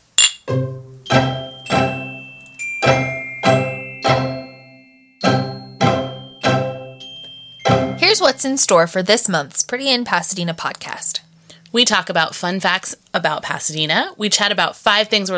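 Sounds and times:
glasses clinking in a toast: 0.2 - 4.4, 5.3 - 8.1
speech: 8.2 - 15.3.

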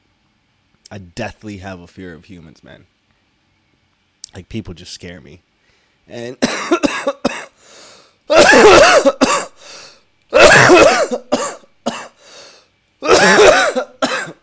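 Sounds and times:
speech: 0.9 - 3.0, 4.3 - 5.5, 6.1 - 7.2
harsh throaty coughing: 6.4 - 7.6, 8.3 - 12.2, 13.0 - 14.4.

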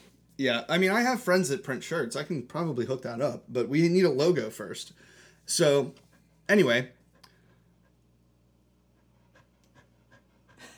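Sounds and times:
speech: 0.4 - 7.0
dog panting in quick soft breathy bursts: 7.0 - 10.7.

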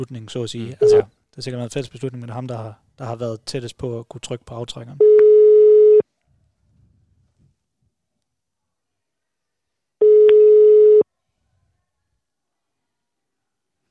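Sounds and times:
speech: 0.0 - 5.2
telephone busy signal beeps: 0.8 - 1.1, 5.0 - 6.0, 10.0 - 11.0.

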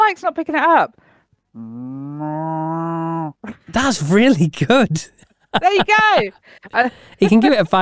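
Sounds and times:
speech: 0.1 - 2.6, 3.4 - 7.8
person imitating a cow mooing: 1.6 - 3.6
laughter: 4.7 - 7.8.

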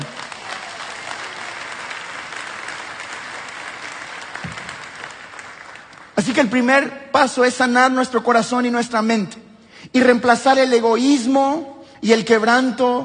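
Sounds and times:
audience applauding: 0.0 - 6.3
speech: 6.2 - 13.0.

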